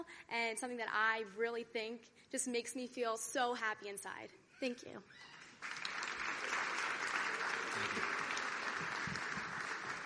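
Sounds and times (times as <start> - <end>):
speech: 0.0 - 5.8
crowd applause for a group of contestants: 5.5 - 10.0.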